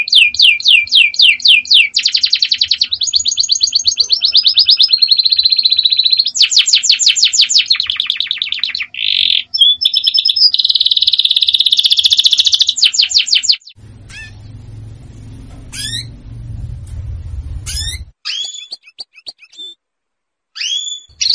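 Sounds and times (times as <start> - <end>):
Belgian canary giving a dense high trill with rapid rolls: 0.0 - 16.4, 17.4 - 19.8, 20.5 - 21.3
low rumbling noise: 13.8 - 18.2.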